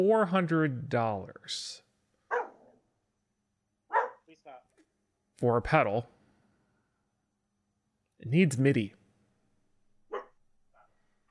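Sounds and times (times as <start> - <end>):
speech: 0.0 - 1.8, 5.4 - 6.2, 8.2 - 9.0
dog barking: 2.3 - 2.8, 3.9 - 4.3, 10.1 - 10.9
dog yipping: 2.3 - 2.8, 3.9 - 4.3, 10.1 - 10.4.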